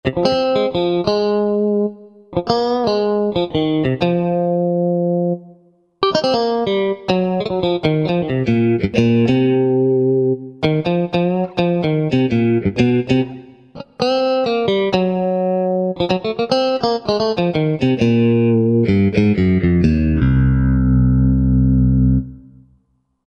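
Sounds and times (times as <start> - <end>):
Stratocaster electric guitar solo: 0.0 - 22.7.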